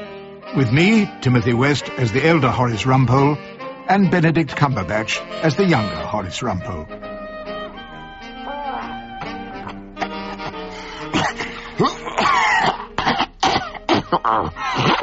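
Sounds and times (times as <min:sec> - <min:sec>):
speech: 0:00.5 - 0:07.1
man coughing and clearing his throat: 0:10.0 - 0:15.0
man groaning and moaning: 0:11.1 - 0:12.6.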